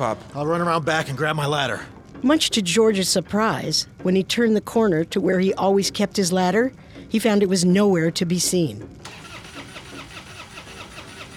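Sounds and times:
speech: 0.0s - 9.2s
truck engine starter cranking without starting: 9.0s - 11.3s.

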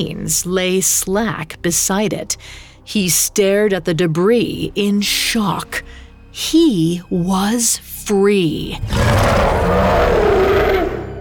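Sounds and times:
speech: 0.0s - 10.5s
giant wolf roaring in snow: 8.8s - 11.2s.

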